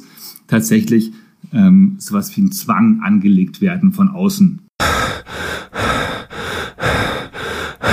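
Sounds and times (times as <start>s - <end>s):
speech: 0.5s - 5.0s
rapid heavy breathing during holotropic breathwork: 4.8s - 7.9s.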